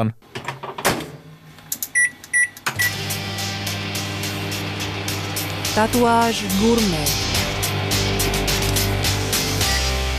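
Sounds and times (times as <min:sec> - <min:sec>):
speech: 0:00.0 - 0:00.5, 0:05.8 - 0:07.3
microwave oven humming whir: 0:00.3 - 0:10.1
microwave electronic keypad beeps: 0:01.9 - 0:03.0.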